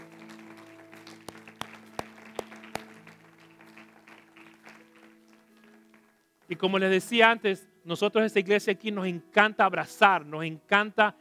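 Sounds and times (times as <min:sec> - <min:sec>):
sharp claps during a church service: 0:00.0 - 0:06.0
speech: 0:06.5 - 0:11.1.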